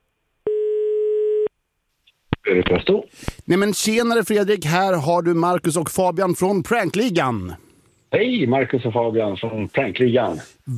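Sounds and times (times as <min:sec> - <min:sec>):
telephone ringback tone while calling: 0:00.5 - 0:01.5
speech: 0:02.5 - 0:10.7.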